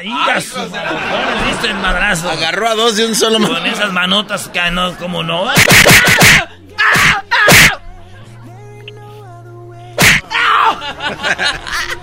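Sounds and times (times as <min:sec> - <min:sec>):
speech: 0:00.0 - 0:06.5
laughter: 0:00.3 - 0:06.5, 0:10.2 - 0:12.0
sneezes: 0:05.6 - 0:07.8, 0:10.0 - 0:10.3.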